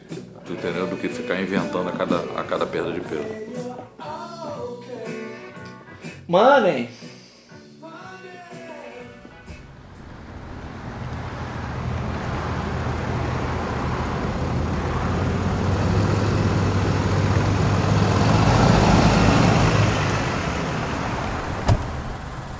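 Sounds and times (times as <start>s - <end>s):
speech: 0.5s - 4.0s, 6.3s - 7.0s
low rumbling road noise from a truck: 9.1s - 22.5s
truck engine drone driving on a road: 9.3s - 22.5s.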